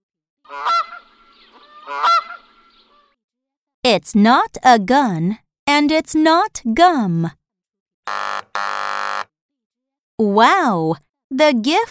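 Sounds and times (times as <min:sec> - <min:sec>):
goose honking: 0:00.5 - 0:03.2
speech: 0:03.9 - 0:07.4, 0:10.3 - 0:11.8.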